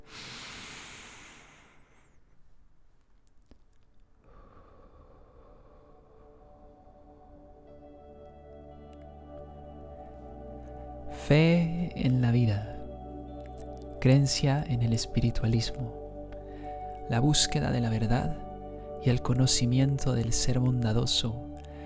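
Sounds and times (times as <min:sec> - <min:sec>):
deliberate slow breath rushing in: 0:00.0 - 0:02.3, 0:04.2 - 0:07.3, 0:16.4 - 0:17.0, 0:21.6 - 0:21.8
soft sustained tones: 0:04.4 - 0:21.8
speech: 0:11.3 - 0:12.7, 0:14.0 - 0:16.0, 0:17.1 - 0:18.4, 0:19.0 - 0:21.5.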